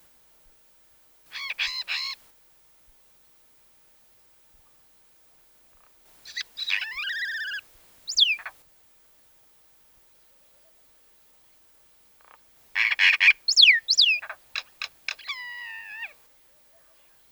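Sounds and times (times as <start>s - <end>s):
common myna calling: 1.3s - 2.2s, 6.2s - 8.6s, 12.2s - 16.2s.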